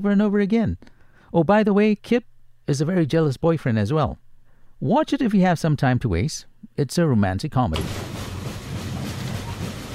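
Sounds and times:
speech: 0.0 - 4.2, 4.8 - 8.1
train clattering along rails: 7.8 - 9.9.

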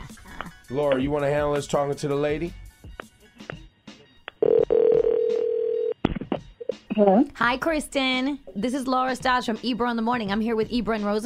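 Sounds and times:
speech: 0.7 - 2.6, 7.0 - 11.2
steady loud phone ringback tone: 4.4 - 6.0.

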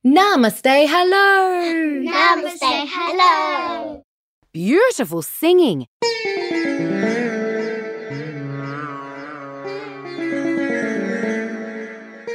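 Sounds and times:
speech: 0.2 - 7.2
sitar playing a flowing melody over a steady low drone: 6.1 - 12.3.

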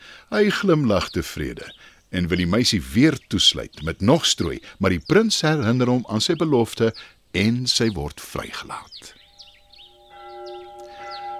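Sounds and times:
birds chirping: 0.0 - 11.3
speech: 0.3 - 9.2
church bells ringing for a wedding: 9.4 - 11.3.

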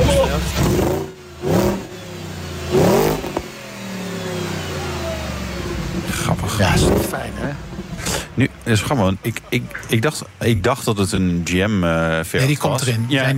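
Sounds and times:
Audi naturally aspirated car engine revving and idling: 0.0 - 12.2
speech: 8.4 - 13.3.

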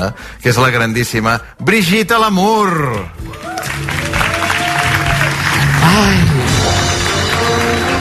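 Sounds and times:
speech: 0.0 - 3.5, 5.8 - 6.3
audience applause: 3.0 - 7.9.

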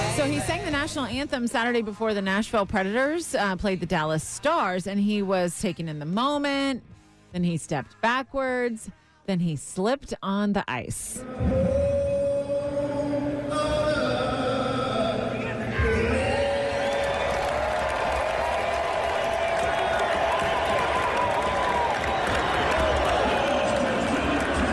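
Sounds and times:
speech: 0.2 - 11.7
large arena crowd groaning ohh: 11.2 - 24.7
dense crowd roar: 15.1 - 24.7.

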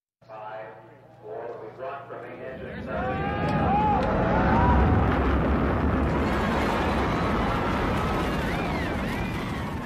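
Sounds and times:
faint voices and crowd sounds: 0.4 - 4.3
space shuttle launch rocket engine roar: 2.4 - 9.8.

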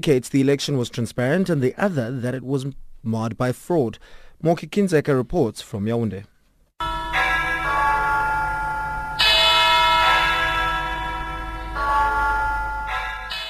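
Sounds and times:
speech: 0.0 - 6.3
large cathedral church bells ringing for mass: 6.8 - 13.4.

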